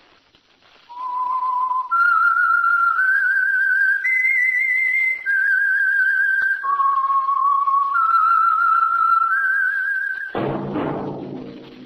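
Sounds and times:
whistled melody: 0.9s - 10.4s.

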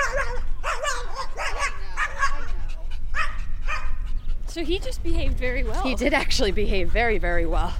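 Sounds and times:
small white dog yapping frantically at a passing dog: 0.0s - 2.6s, 3.2s - 4.0s
speech: 4.6s - 7.7s.

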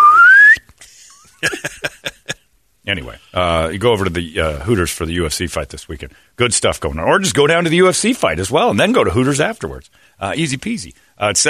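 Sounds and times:
loud slide whistle gliding upward in pitch: 0.0s - 0.6s
laughter: 0.8s - 2.4s
speech: 2.9s - 11.4s.

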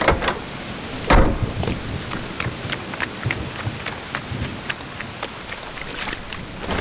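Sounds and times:
heavy rain pouring: 0.0s - 6.7s
thump: 1.0s - 1.6s.

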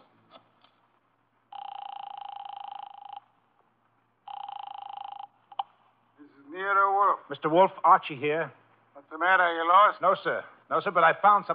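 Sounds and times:
telephone buzzing tones as call goes through: 1.5s - 3.4s, 4.2s - 5.7s
speech: 7.3s - 8.6s, 9.2s - 11.5s.

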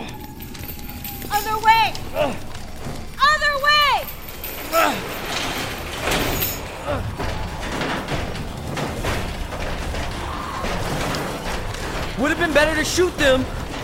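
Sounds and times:
auto shop garage door hauled open by its chain: 0.0s - 13.8s
speech: 1.4s - 2.5s, 4.7s - 5.2s, 12.2s - 13.6s.

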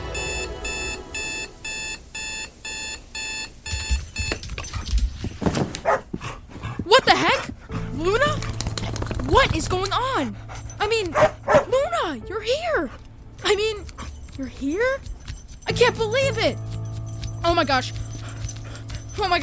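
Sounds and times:
rapid electronic alarm beeping: 0.1s - 4.8s
dog barking and yelping excitedly: 5.8s - 12.1s, 12.8s - 19.4s
speech: 9.7s - 10.5s, 17.6s - 18.0s, 19.2s - 19.4s.

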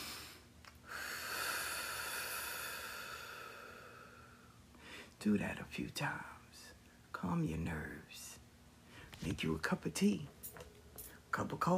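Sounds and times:
long slow airy breath: 0.0s - 5.2s
speech: 5.2s - 6.4s, 7.2s - 8.2s, 9.2s - 10.4s, 11.4s - 11.7s.

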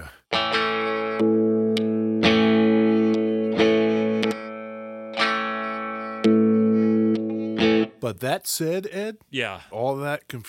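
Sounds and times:
thin hollow out-of-phase electric guitar on rhythm pickup playing ringing chords: 0.3s - 8.0s
speech: 1.2s - 1.4s, 8.1s - 10.4s.

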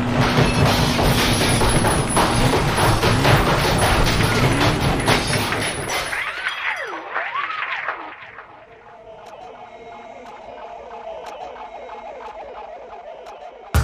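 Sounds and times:
rock crusher grinding and shattering in a test: 0.0s - 6.6s
wavering warbling tone: 0.4s - 13.7s.

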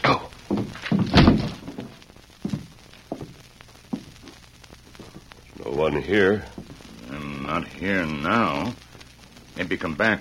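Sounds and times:
door rushed and forced open with a heavy crash: 0.8s - 1.7s
speech: 5.9s - 6.6s, 7.5s - 8.8s, 9.6s - 10.1s.

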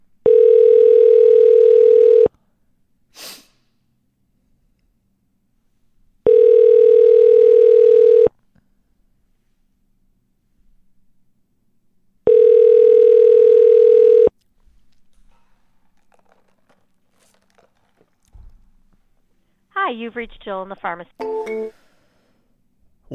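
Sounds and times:
phone line ringback tone during call transfer to a drugstore chain's corporate office: 0.2s - 2.3s, 6.3s - 8.3s, 12.3s - 14.3s
speech: 20.0s - 21.8s.

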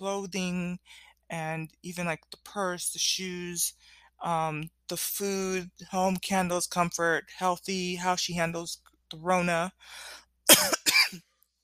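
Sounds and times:
speech: 0.0s - 11.3s
forceful coughs: 10.5s - 11.2s.

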